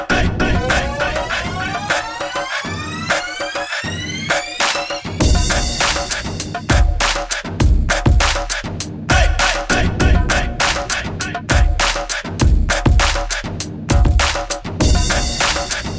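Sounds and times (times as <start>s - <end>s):
East Asian oriental beat bass line: 0.1s - 15.9s.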